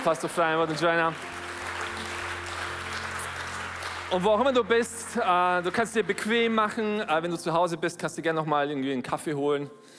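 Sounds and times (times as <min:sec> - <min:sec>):
speech: 0:00.0 - 0:01.4, 0:04.1 - 0:09.9
large indoor church audience applauding: 0:00.0 - 0:07.4.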